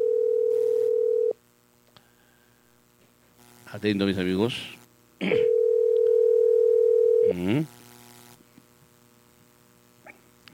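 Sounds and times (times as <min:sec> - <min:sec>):
telephone ringback tone while placing a call: 0:00.0 - 0:01.4, 0:05.3 - 0:07.4
hum: 0:00.0 - 0:10.5
speech: 0:03.7 - 0:05.4, 0:07.4 - 0:07.8.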